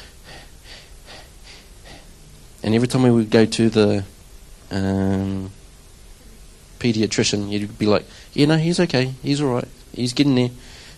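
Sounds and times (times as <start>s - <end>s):
voice imitating a child's laboured breathing: 0.0s - 2.1s
speech: 2.6s - 4.1s, 4.7s - 5.6s, 6.8s - 10.9s.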